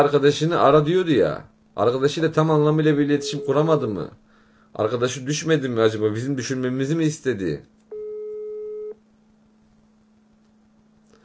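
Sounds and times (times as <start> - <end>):
speech: 0.0 - 7.8
faint low hum: 0.0 - 11.2
telephone busy signal on an engaged line: 3.1 - 3.7, 7.9 - 9.0.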